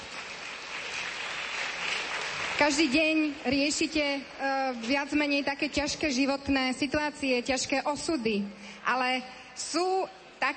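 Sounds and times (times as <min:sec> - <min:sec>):
audience applause: 0:00.0 - 0:03.2
speech: 0:02.6 - 0:10.5.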